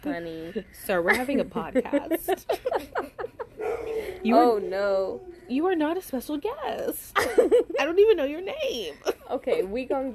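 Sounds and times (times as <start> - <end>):
speech: 0.0 - 3.1, 4.1 - 10.1
laughter: 0.0 - 4.3, 7.2 - 8.0
dog yapping barks: 3.6 - 4.0.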